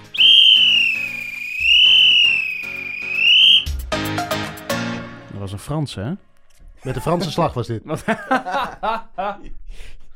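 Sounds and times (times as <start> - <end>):
train conductor's whistle blown for departure: 0.0 - 3.8
speech: 5.6 - 9.6
laughter: 6.8 - 9.5.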